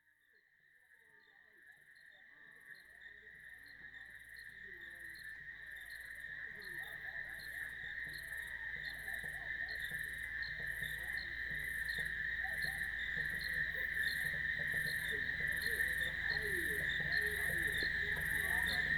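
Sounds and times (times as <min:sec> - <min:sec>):
cricket trilling in a village: 0:04.0 - 0:18.9.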